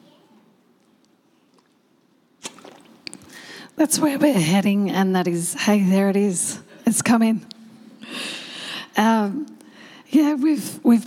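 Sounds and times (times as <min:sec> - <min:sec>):
person slurping a sip of water: 0:00.8 - 0:03.6
soft swallowing: 0:02.4 - 0:03.4
speech: 0:03.8 - 0:07.6, 0:09.0 - 0:11.0.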